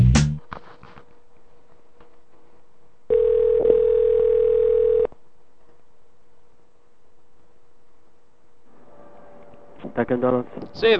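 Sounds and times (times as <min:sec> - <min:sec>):
telephone ringback tone through the receiver: 0:03.1 - 0:05.1
speech: 0:10.0 - 0:10.9.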